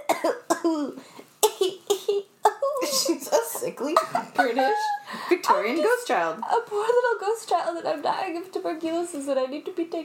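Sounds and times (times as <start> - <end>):
person with a persistent cough coughing: 0.0 - 4.4
speech: 0.2 - 1.8, 3.7 - 10.0.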